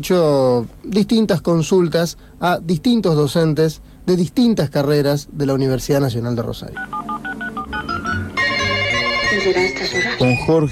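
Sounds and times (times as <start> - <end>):
speech: 0.0 - 7.1, 9.4 - 10.7
electronic telephone tones: 6.8 - 10.7.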